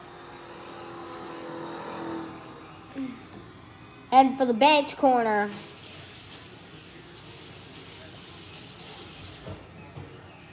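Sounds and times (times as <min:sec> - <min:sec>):
race car engines droning and revving: 0:00.0 - 0:03.5
speech: 0:04.1 - 0:05.7.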